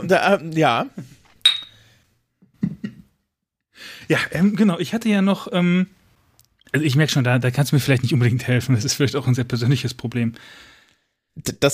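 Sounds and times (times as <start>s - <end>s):
speech: 0.0s - 1.0s, 3.8s - 6.0s, 6.7s - 10.7s, 11.4s - 11.7s
wine glasses clinking in a toast: 1.4s - 1.8s.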